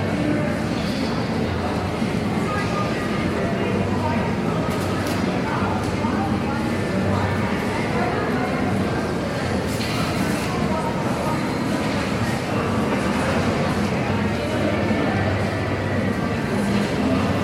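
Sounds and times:
overlapping voices inside a busy train station hall: 0.0s - 17.4s.

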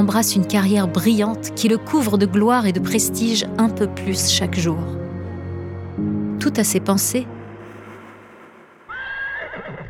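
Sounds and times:
speech: 0.1s - 5.0s, 6.4s - 7.4s
quiet low rumble: 6.6s - 8.9s
horse neighing: 8.9s - 9.8s.

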